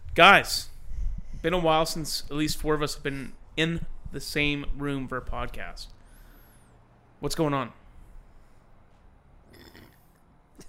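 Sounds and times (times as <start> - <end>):
low room hum: 0.0 - 10.6
speech: 0.2 - 0.7, 1.4 - 6.0, 7.2 - 7.8
burp: 9.4 - 10.6.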